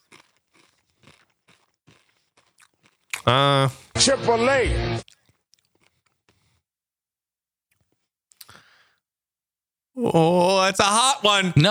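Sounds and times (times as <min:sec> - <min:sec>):
crunching on a crisp snack: 0:00.0 - 0:03.6, 0:05.0 - 0:06.6, 0:07.7 - 0:08.8
speech: 0:03.3 - 0:05.0, 0:10.1 - 0:11.6.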